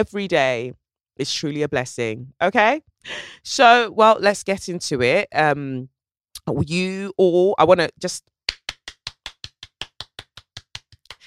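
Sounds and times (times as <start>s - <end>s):
speech: 0.0s - 8.3s
one person clapping hands: 8.5s - 11.2s.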